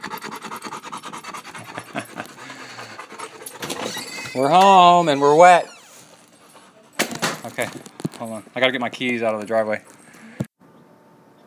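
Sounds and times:
dog panting: 0:00.0 - 0:05.4, 0:06.0 - 0:07.1
speech: 0:04.4 - 0:05.7, 0:07.6 - 0:09.9.

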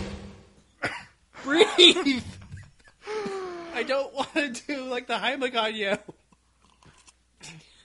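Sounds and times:
short sputtering coughs: 0:00.8 - 0:01.2, 0:05.9 - 0:06.4
laughter: 0:01.4 - 0:04.3
speech: 0:01.8 - 0:02.3, 0:03.8 - 0:06.2.

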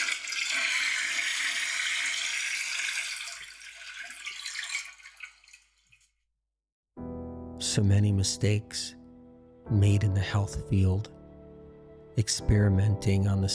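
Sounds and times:
toilet flushing: 0:00.0 - 0:05.7
speech: 0:07.7 - 0:09.0, 0:09.7 - 0:11.2, 0:12.2 - 0:13.5.

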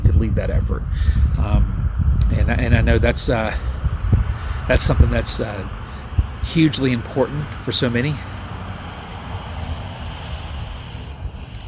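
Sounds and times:
speech: 0:00.4 - 0:03.7, 0:04.7 - 0:05.8, 0:06.5 - 0:08.3
diesel truck passing by: 0:00.8 - 0:11.6.

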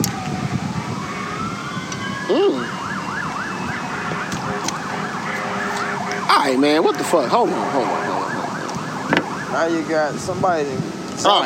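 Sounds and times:
ambulance or fire truck siren wailing in a yelp pattern: 0:00.0 - 0:10.4
steady road noise: 0:00.0 - 0:11.4
speech: 0:02.3 - 0:02.8, 0:06.4 - 0:08.1, 0:09.6 - 0:11.4.

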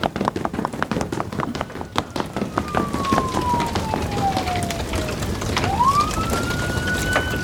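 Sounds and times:
quick footstep-like tapping: 0:00.0 - 0:05.9
police car siren wailing: 0:00.3 - 0:07.4.

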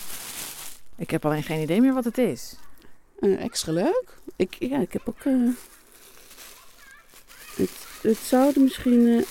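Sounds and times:
small plastic bag of seeds crinkling: 0:00.0 - 0:02.2, 0:04.0 - 0:09.2
speech: 0:01.0 - 0:05.7, 0:07.6 - 0:09.2.

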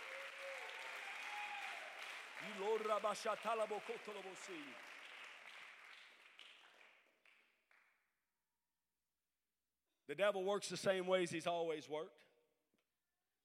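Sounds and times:
audience applause: 0:00.0 - 0:07.8
speech: 0:02.4 - 0:04.9, 0:10.1 - 0:12.3.

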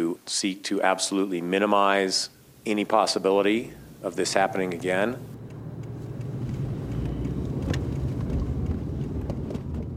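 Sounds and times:
speech: 0:00.2 - 0:05.4
car engine hum: 0:02.3 - 0:09.9
car road rumble driving around town: 0:02.3 - 0:09.9
buffeting wind noise: 0:03.8 - 0:09.9.

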